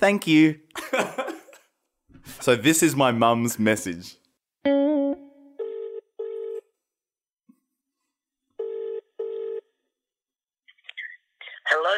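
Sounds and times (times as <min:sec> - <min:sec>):
speech: 0:00.0 - 0:01.4, 0:02.2 - 0:04.8
telephone ringing with a buzzing double-pulse ringtone: 0:05.6 - 0:06.7, 0:08.6 - 0:09.8.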